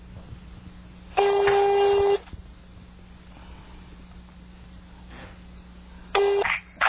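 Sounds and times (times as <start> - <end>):
faint hum: 0.0 - 6.8
phone ringback tone: 1.2 - 2.2, 6.2 - 6.5.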